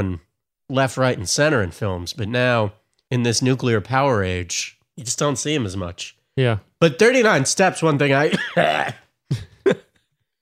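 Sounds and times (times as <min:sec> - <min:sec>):
speech: 0:00.0 - 0:09.8
person coughing harshly: 0:08.3 - 0:09.8.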